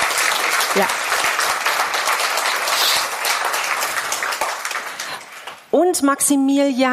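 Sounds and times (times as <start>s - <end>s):
audience applauding: 0.0s - 5.7s
speech: 0.7s - 1.1s, 5.7s - 6.9s.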